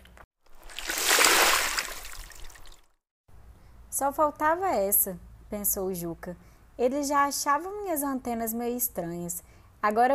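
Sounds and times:
startled crocodiles plunging into water: 0:00.6 - 0:02.9
speech: 0:04.0 - 0:10.1.

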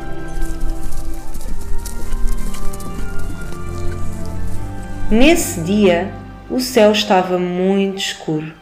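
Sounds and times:
horse hooves clip-clopping: 0:00.0 - 0:06.0
speech: 0:05.1 - 0:08.6.

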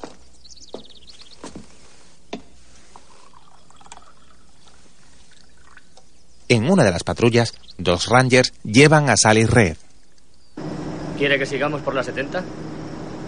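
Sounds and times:
coffee being poured into a cup: 0:02.9 - 0:06.0
speech: 0:06.5 - 0:09.8, 0:11.2 - 0:12.6.

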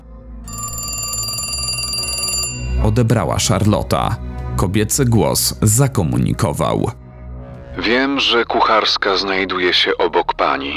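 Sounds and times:
telephone bell ringing: 0:00.4 - 0:03.0
speech: 0:02.8 - 0:07.0, 0:07.8 - 0:10.7.

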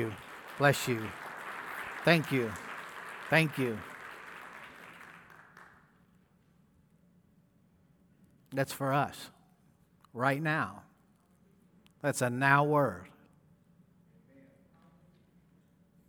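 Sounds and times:
speech: 0:00.0 - 0:01.2, 0:02.0 - 0:02.6, 0:03.3 - 0:03.9, 0:08.6 - 0:09.4, 0:10.1 - 0:10.9, 0:12.0 - 0:13.1
audience applauding with steady hand clapping: 0:00.0 - 0:05.8.

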